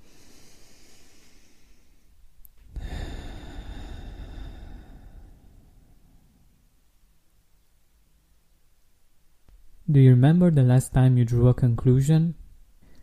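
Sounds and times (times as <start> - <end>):
slow deep breath in and out: 0.0 - 6.7, 12.8 - 13.0
speech: 9.9 - 12.4.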